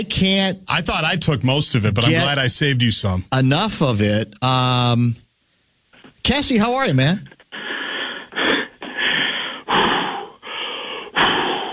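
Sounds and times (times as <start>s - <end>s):
speech: 0.0s - 5.2s, 6.2s - 7.7s
heavy deliberate breathing to calm down: 7.3s - 11.7s.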